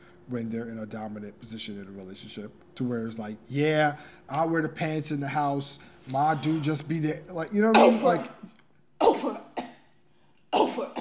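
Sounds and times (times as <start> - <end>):
speech: 0.3 - 8.6
person coughing: 7.7 - 9.9, 10.5 - 10.9.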